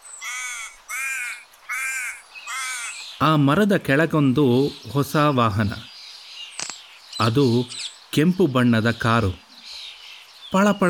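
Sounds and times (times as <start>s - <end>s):
crow cawing from a big tree in a park: 0.2s - 3.2s
speech: 3.2s - 5.9s, 7.2s - 9.4s, 10.5s - 10.8s.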